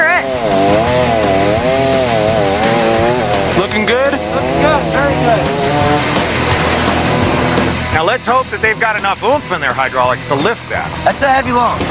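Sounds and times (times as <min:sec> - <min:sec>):
chainsaw cutting through a heavy log: 0:00.0 - 0:07.8
speech: 0:08.5 - 0:11.8.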